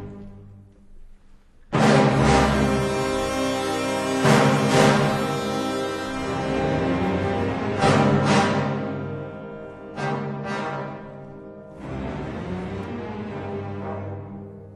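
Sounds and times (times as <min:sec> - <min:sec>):
death chord: 0:01.8 - 0:13.4.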